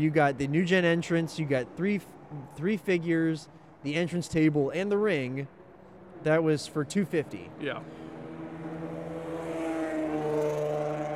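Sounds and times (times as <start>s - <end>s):
speech: 0.0s - 5.6s, 6.2s - 8.1s
unmuffled car engine revving: 5.5s - 11.1s.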